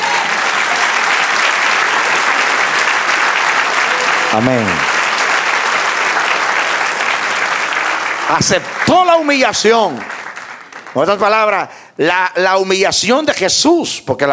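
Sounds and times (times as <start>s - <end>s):
audience applauding: 0.0s - 11.7s
speech: 4.4s - 4.9s, 8.3s - 10.2s, 10.9s - 14.3s.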